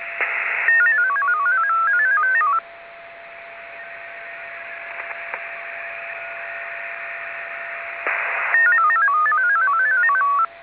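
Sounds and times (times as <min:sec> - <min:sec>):
8-tone MFSK data signal at 16.67 Bd: 0:00.6 - 0:02.6, 0:08.5 - 0:10.5.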